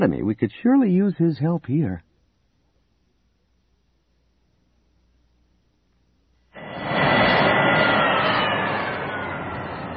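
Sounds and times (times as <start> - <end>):
speech: 0.0 - 2.1
E-wing starfighter engine roar winding down after landing near a beach: 6.6 - 9.9.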